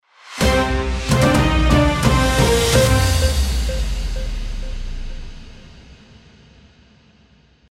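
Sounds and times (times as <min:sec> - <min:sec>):
TV news jingle: 0:00.4 - 0:05.8.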